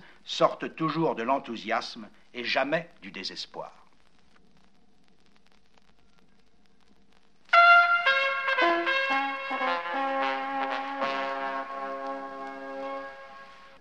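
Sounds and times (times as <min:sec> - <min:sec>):
speech: 0:00.3 - 0:03.8
car horns honking a chant rhythm on the Champs-Élysées in Paris: 0:07.6 - 0:13.7.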